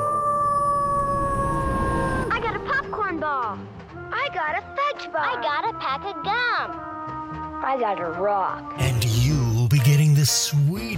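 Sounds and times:
wolf howling: 0:00.0 - 0:02.8
low rumble: 0:00.4 - 0:03.8
speech: 0:05.0 - 0:06.9, 0:07.6 - 0:09.2, 0:09.8 - 0:10.9.

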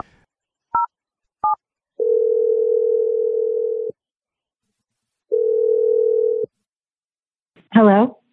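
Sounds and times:
phone line tone: 0:02.0 - 0:03.9, 0:05.3 - 0:06.5.

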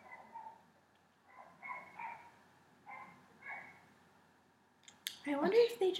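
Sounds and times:
dog barking: 0:00.0 - 0:00.6, 0:01.3 - 0:03.8
speech: 0:05.2 - 0:05.9.

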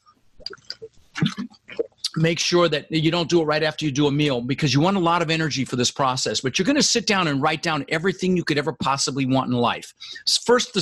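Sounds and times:
person sipping water with soft gulps and slurps: 0:00.4 - 0:02.1
speech: 0:02.2 - 0:10.8.

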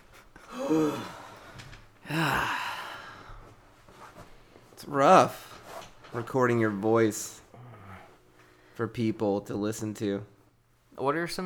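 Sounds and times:
person breathing heavily, out of breath after climbing stairs: 0:00.4 - 0:03.6, 0:07.5 - 0:08.8
speech: 0:04.9 - 0:05.4, 0:06.1 - 0:07.4, 0:08.8 - 0:10.3, 0:11.0 - 0:11.4.

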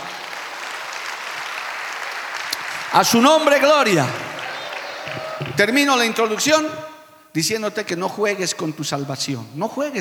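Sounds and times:
church audience applauding during a worship service: 0:00.0 - 0:06.8
speech: 0:02.9 - 0:04.3, 0:05.1 - 0:09.9.

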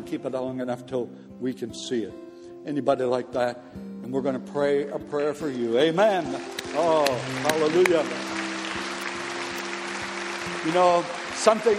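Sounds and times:
speech: 0:00.1 - 0:08.3, 0:10.6 - 0:11.7
audience clapping in a large room: 0:06.0 - 0:11.7.

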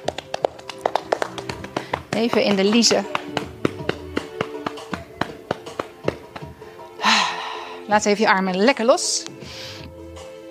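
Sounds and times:
hands slapping and tapping the legs during a body-tapping exercise: 0:00.0 - 0:06.6
speech: 0:02.2 - 0:03.5, 0:07.9 - 0:09.7
breathy exhale: 0:06.6 - 0:07.9, 0:09.4 - 0:09.9.

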